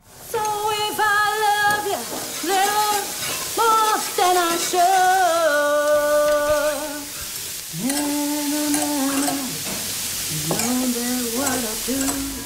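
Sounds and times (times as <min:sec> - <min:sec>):
food sizzling and frying in a pan: 0:00.0 - 0:12.4
woman singing a melody while cooking: 0:00.3 - 0:09.7, 0:10.3 - 0:12.4.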